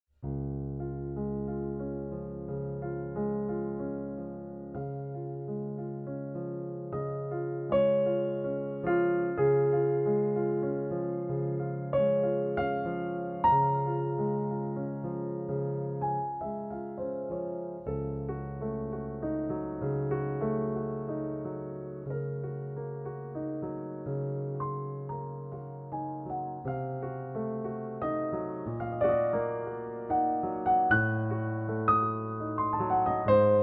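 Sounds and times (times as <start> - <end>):
Steinway piano prelude: 0.2 - 33.6.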